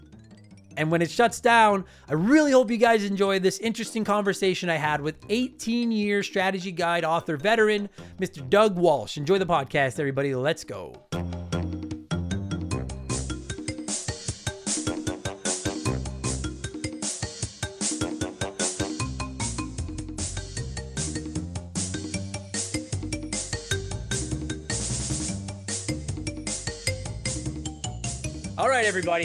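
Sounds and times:
upbeat retro chiptune video game music with square-wave melodies and bass line: 0.0 - 2.7, 11.1 - 28.6
speech: 0.8 - 11.4, 28.9 - 29.2.

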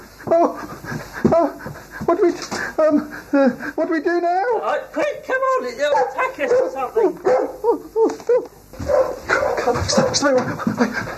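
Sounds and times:
dog rough breathy panting: 0.5 - 3.8, 8.8 - 11.1
speech: 1.4 - 8.5, 9.6 - 11.1.

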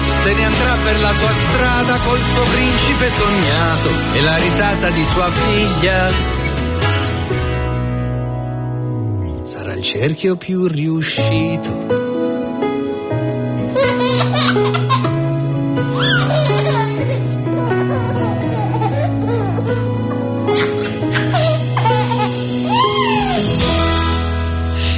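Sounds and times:
steady full musical accompaniment: 0.0 - 24.9
speech: 0.2 - 6.4, 9.8 - 12.1
small child giggling in a song: 13.8 - 15.1, 16.0 - 19.8, 20.5 - 23.4.

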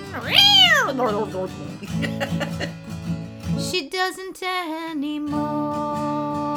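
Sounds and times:
Persian cat meowing: 0.1 - 1.3
speech: 0.2 - 2.9, 3.6 - 6.4
laughter: 0.9 - 3.0.

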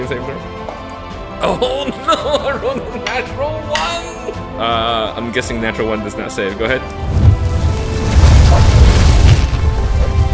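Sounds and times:
speech: 0.0 - 0.6, 1.4 - 7.2
laughter: 1.4 - 3.2
flames crackling: 6.9 - 10.3
fireball spell explosion sound effect: 7.0 - 10.3.

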